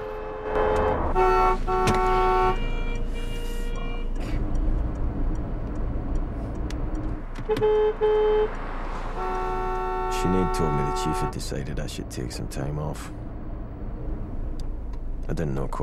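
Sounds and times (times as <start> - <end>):
car horns honking in heavy traffic: 0.0 - 5.0, 7.2 - 12.1
engines droning: 0.0 - 15.8
steady low rumble of traffic: 0.0 - 15.8
speech: 7.6 - 8.6, 10.2 - 13.3, 15.3 - 15.8.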